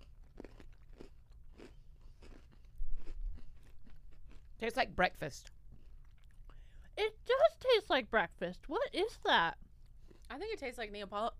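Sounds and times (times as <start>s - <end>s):
crisp bite and chewing of a strawberry and chocolate cream sandwich cookie: 0.0s - 4.8s, 5.4s - 6.6s, 9.6s - 10.3s
speech: 4.6s - 5.6s, 7.6s - 9.6s, 10.3s - 11.3s.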